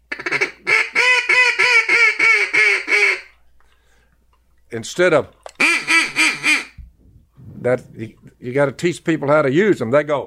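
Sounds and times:
duck call imitating mallard hen quacks: 0.1 - 3.3, 5.6 - 6.8
speech: 4.7 - 5.4, 7.6 - 10.2.

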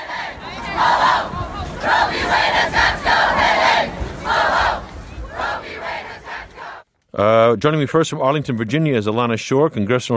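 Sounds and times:
large rally crowd chanting in unison: 0.0 - 6.9
speech: 7.5 - 10.1.

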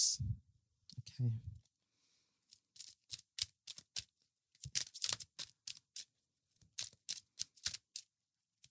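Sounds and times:
speech: 0.0 - 0.4, 1.2 - 1.5
tarot cards being shuffled and pulled from a deck: 2.5 - 8.6.

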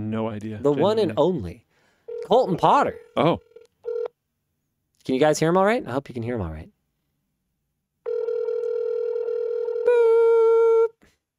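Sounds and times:
speech: 0.1 - 3.5, 5.0 - 6.7
phone call ringing tone while waiting for pickup: 2.1 - 4.1, 8.1 - 10.0.

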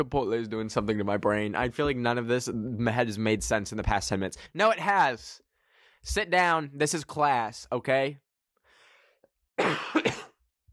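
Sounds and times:
speech: 0.0 - 5.4, 6.0 - 8.2, 9.6 - 10.3
person coughing from corn stuck in throat: 9.6 - 10.4.

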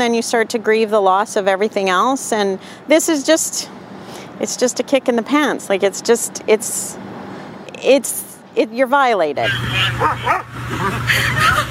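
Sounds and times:
speech: 0.0 - 7.1, 7.8 - 11.6
laughter: 9.4 - 11.6
excited dog barking and yipping: 10.0 - 10.6.

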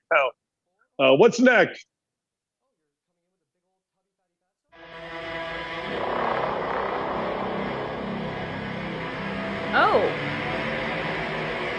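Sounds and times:
speech: 0.1 - 0.4, 1.0 - 1.9
drone buzzing overhead: 4.8 - 11.7.

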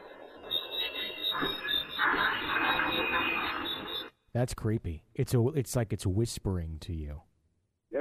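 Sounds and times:
dense chorus of crickets chirping: 0.0 - 4.2
speech: 4.4 - 7.3.

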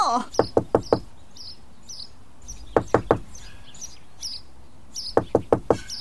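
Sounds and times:
birds chirping and tweeting softly: 0.0 - 5.9
sharp wooden knocks on the door of a little old cottage in the woods: 0.4 - 1.1, 2.5 - 3.4, 5.2 - 5.9.

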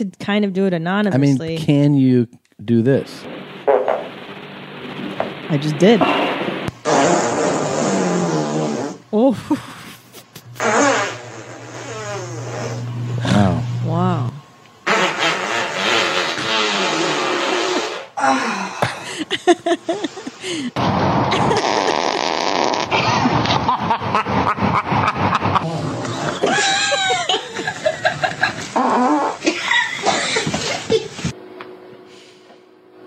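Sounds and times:
speech: 0.0 - 3.4, 5.5 - 6.3, 9.2 - 9.8
assorted fart sound effects: 3.3 - 4.2, 5.9 - 9.0, 10.4 - 13.5, 14.8 - 18.2, 20.8 - 26.6, 28.4 - 29.6
laughter: 18.8 - 20.7, 21.3 - 22.2, 23.0 - 28.8, 29.4 - 31.2.

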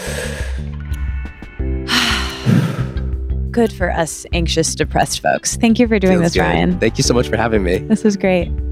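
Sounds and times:
deep inhale and exhale as a calming breath: 0.0 - 0.8, 1.8 - 3.2
speech: 3.6 - 8.6.

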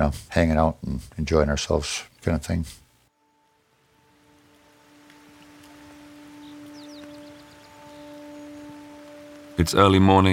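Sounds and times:
speech: 0.0 - 2.8, 9.6 - 10.3
light rain patter: 0.0 - 10.3
high chirps: 3.2 - 10.3.

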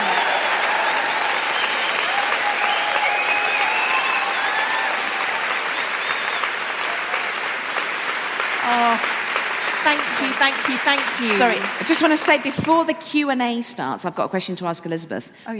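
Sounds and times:
sustained audience applause: 0.0 - 13.0
faint whistles in the crowd: 1.6 - 4.4, 6.0 - 6.5
speech: 10.5 - 15.5.

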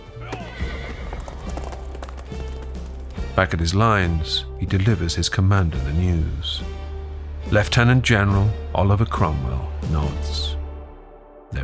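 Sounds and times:
horse whinny: 0.2 - 3.1
horse hooves clopping: 0.2 - 4.4
speech: 3.4 - 6.8, 7.5 - 10.6.

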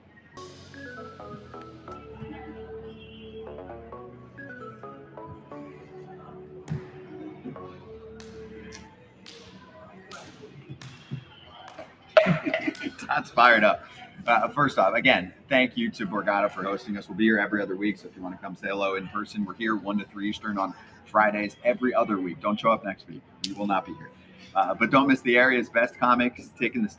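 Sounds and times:
hands slapping together in a slap-hands game: 8.2 - 13.0
laughter: 12.1 - 13.7
speech: 13.2 - 26.9.

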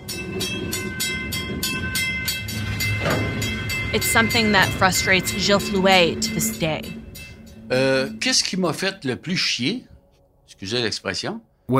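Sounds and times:
train wheels clattering over rail joints in Lac Megantic: 0.0 - 6.0
low rumble of passing train: 0.0 - 10.0
faint high tonal squeal of train: 0.0 - 10.2
speech: 3.9 - 7.0, 7.7 - 9.9, 10.6 - 11.7.

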